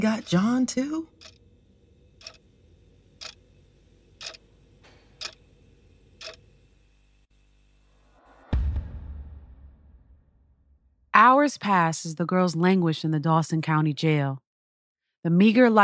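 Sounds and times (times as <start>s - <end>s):
clock ticking: 0.0s - 1.4s, 2.2s - 2.5s, 3.2s - 3.5s, 4.2s - 4.5s, 5.1s - 5.5s, 6.2s - 6.4s
speech: 0.0s - 1.4s, 11.2s - 14.4s, 15.2s - 15.8s.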